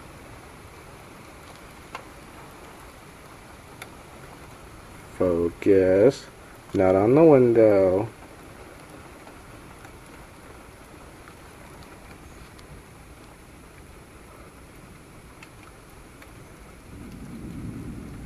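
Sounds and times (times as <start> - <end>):
steady rain: 0.0 - 18.2
speech: 5.2 - 8.2
low rumble of thunder: 16.0 - 18.2.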